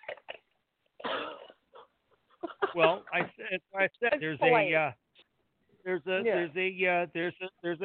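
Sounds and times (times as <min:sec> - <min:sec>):
person coughing up phlegm: 0:01.0 - 0:01.9
speech: 0:02.8 - 0:05.0, 0:05.8 - 0:07.8.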